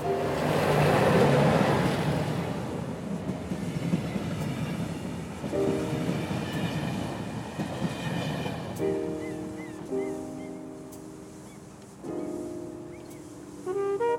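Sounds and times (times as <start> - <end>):
train rumbling and clattering along rails: 0.0 - 14.1.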